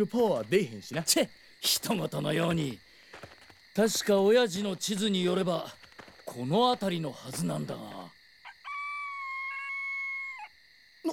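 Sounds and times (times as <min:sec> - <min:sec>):
speech: 0:00.0 - 0:02.9, 0:03.8 - 0:08.1
long shrill piercing screech: 0:08.6 - 0:10.5.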